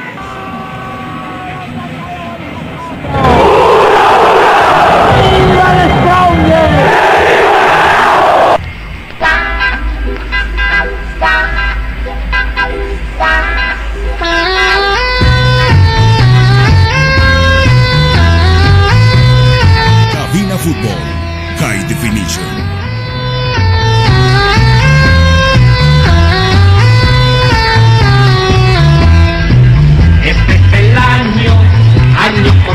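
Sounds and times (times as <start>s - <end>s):
loud crowd roar: 3.0s - 8.6s
music track for a team's lineup announcement: 9.2s - 30.1s
heavy pulsing bassline: 9.2s - 32.7s.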